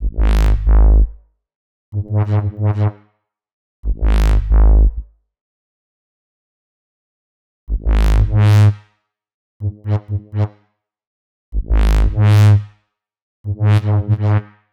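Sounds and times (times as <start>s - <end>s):
G#m bass with complex electro synths: 0.0s - 1.2s, 2.0s - 2.9s, 3.9s - 5.0s, 7.7s - 8.7s, 9.6s - 10.5s, 11.6s - 12.6s, 13.5s - 14.4s.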